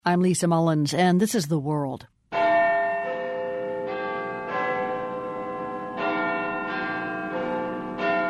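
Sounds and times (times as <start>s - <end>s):
speech: 0.0s - 2.2s
Big Ben clock tower bell in London chiming: 2.3s - 8.2s.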